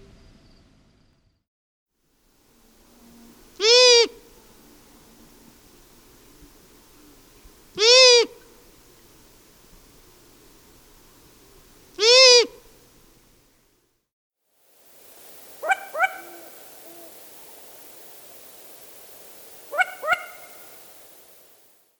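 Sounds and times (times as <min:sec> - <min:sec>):
long-eared owl calling: 0:02.8 - 0:09.2, 0:11.6 - 0:13.0, 0:15.5 - 0:18.5, 0:19.4 - 0:21.6.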